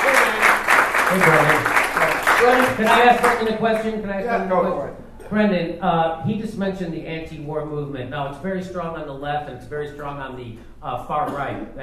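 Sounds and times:
crowd applauding: 0:00.0 - 0:04.1
speech: 0:01.1 - 0:01.7, 0:02.4 - 0:11.8.

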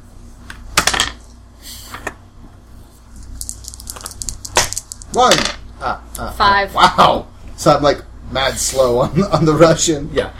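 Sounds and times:
red dice clattering onto a hard tabletop during a game: 0:03.2 - 0:05.6
speech: 0:05.2 - 0:10.3.

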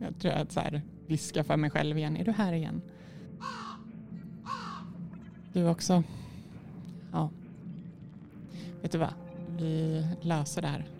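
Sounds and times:
speech: 0:00.0 - 0:03.6, 0:05.5 - 0:06.2, 0:07.1 - 0:07.4, 0:08.8 - 0:10.9
crow cawing: 0:03.4 - 0:05.0.

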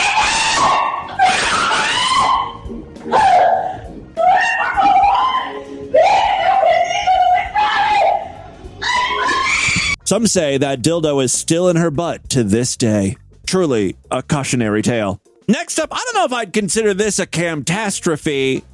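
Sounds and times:
woman screaming in panic: 0:00.0 - 0:10.0
speech: 0:10.1 - 0:18.7.

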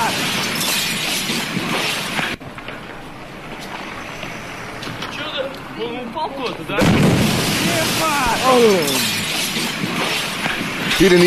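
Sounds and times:
shower of glass shattering from an explosion shockwave: 0:00.0 - 0:02.4, 0:06.8 - 0:11.2
speech: 0:06.3 - 0:07.1, 0:07.8 - 0:09.1, 0:11.0 - 0:11.2
loud roaring explosion blast: 0:06.8 - 0:10.0.

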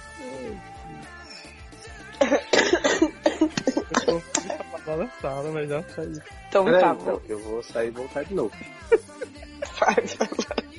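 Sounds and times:
speech: 0:02.2 - 0:02.8, 0:04.0 - 0:10.5
person coughing: 0:02.2 - 0:04.7, 0:09.0 - 0:10.7
laughter: 0:02.2 - 0:04.8, 0:08.6 - 0:10.7.

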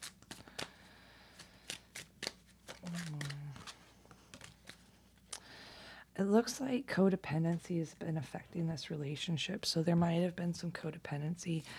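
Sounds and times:
tarot cards being shuffled and drawn: 0:00.0 - 0:05.4
speech: 0:06.2 - 0:11.7.

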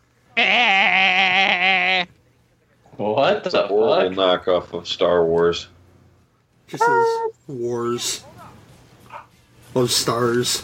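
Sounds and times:
goat bleating: 0:00.4 - 0:02.1, 0:06.8 - 0:07.3
speech: 0:03.0 - 0:05.8, 0:06.7 - 0:08.3, 0:09.7 - 0:10.6.

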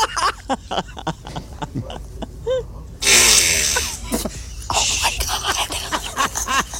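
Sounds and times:
laughter: 0:00.0 - 0:02.8, 0:03.5 - 0:06.7
speech: 0:00.5 - 0:01.2
woman's loud raspy fart in a library: 0:03.0 - 0:04.0.

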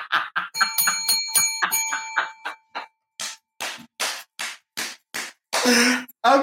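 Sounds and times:
bell ringing rapidly: 0:00.6 - 0:03.0
speech: 0:05.7 - 0:06.4.

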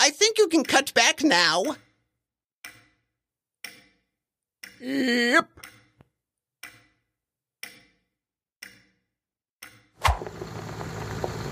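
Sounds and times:
clock ticking: 0:00.0 - 0:02.0, 0:02.6 - 0:03.0, 0:03.6 - 0:04.9, 0:05.5 - 0:06.0, 0:06.6 - 0:07.0, 0:07.6 - 0:08.0, 0:08.6 - 0:08.9
speech: 0:00.1 - 0:01.9, 0:04.8 - 0:05.7.

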